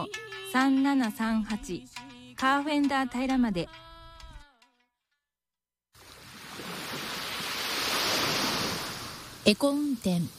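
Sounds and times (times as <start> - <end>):
speech: 0.1 - 3.8, 9.5 - 10.3
ocean waves breaking on shore: 6.0 - 10.3.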